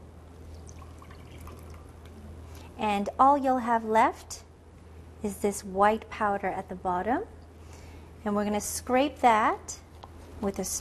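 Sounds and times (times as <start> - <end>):
water poured carefully out of a bowl above settled starch: 0.4 - 2.2
light water drips: 0.4 - 2.7
speech: 2.8 - 4.4, 5.2 - 7.4, 8.2 - 9.8, 10.4 - 10.8.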